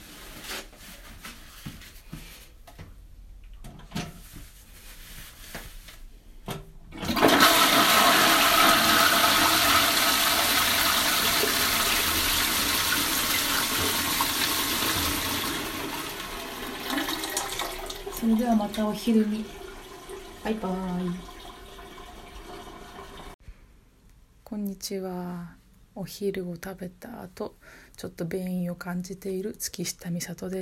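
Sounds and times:
toilet flushing: 6.9s - 23.4s
speech: 18.6s - 19.6s, 20.4s - 21.3s, 24.8s - 30.5s.

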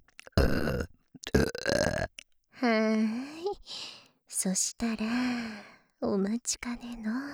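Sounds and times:
person burping: 0.2s - 2.2s
speech: 4.4s - 7.3s.

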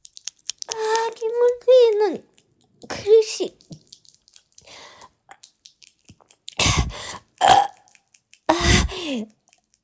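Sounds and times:
mouth clicks and smacks: 0.0s - 9.8s
person burping after chugging a carbonated drink: 7.4s - 7.8s
speech: 9.2s - 9.4s.

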